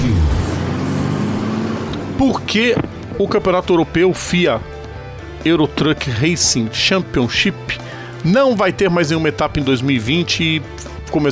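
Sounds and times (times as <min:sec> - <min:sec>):
truck engine revving in a truck racing segment jingle: 0:00.0 - 0:05.7
speech: 0:02.2 - 0:04.7, 0:05.4 - 0:11.2.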